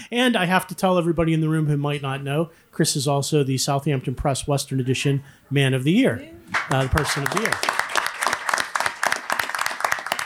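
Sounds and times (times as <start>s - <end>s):
speech: 0.1s - 7.8s
room full of people applauding: 6.5s - 10.2s.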